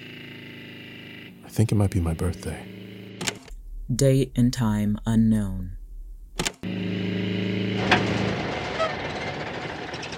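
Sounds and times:
car engine humming: 0.0 - 4.0, 5.8 - 10.1
speech: 1.5 - 2.8, 3.9 - 5.8
sharp click: 6.4 - 6.6.

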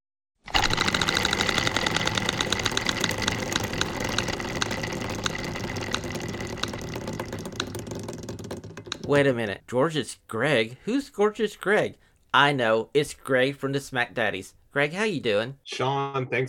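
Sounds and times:
prize wheel being spun, ticking clicks: 0.5 - 9.4
speech: 9.1 - 16.4.

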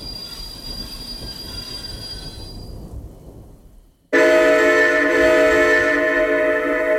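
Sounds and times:
loud metallic train brake squeal: 0.0 - 2.8
train rumbling: 0.0 - 6.9.

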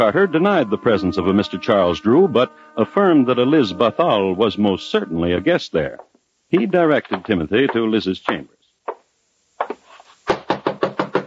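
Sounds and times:
speech: 0.0 - 8.6
knocking on a door: 10.3 - 11.2.

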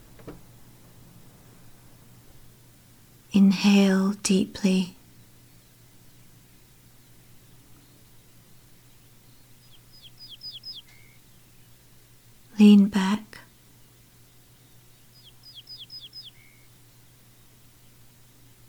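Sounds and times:
birds chirping outside: 0.0 - 3.6, 4.3 - 12.9, 13.6 - 18.1
steady low hum: 0.0 - 18.6
speech: 3.3 - 5.0.

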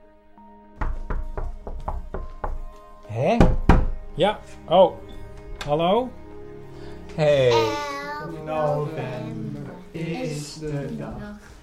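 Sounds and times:
firm knocking on a door: 0.8 - 2.7, 3.4 - 4.1
speech: 3.1 - 3.6, 4.2 - 6.2, 7.2 - 9.4, 10.0 - 11.5.

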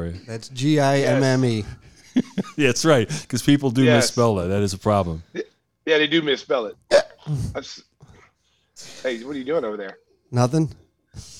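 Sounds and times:
speech: 0.0 - 7.9, 8.8 - 11.3
laughter: 1.4 - 3.3
person hiccuping: 6.9 - 7.7
short throaty voiced sound: 6.9 - 7.8.

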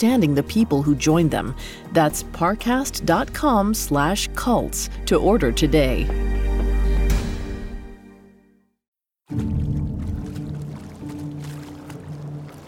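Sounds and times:
speech: 0.0 - 6.4
paddling a small boat on water: 9.3 - 12.6
water lapping: 9.3 - 12.6.

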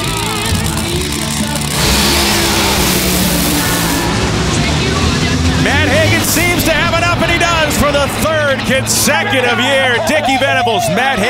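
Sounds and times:
Nitro Funny Car drag racing engines roaring in a final round: 0.0 - 10.6
commentator's voice: 4.5 - 11.2
speech: 8.7 - 11.2.

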